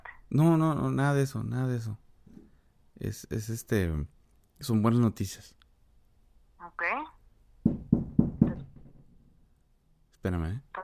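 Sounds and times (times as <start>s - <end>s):
speech: 0.3s - 2.0s, 3.0s - 5.6s, 6.6s - 7.1s, 10.2s - 10.8s
knocking on a door: 7.6s - 9.3s.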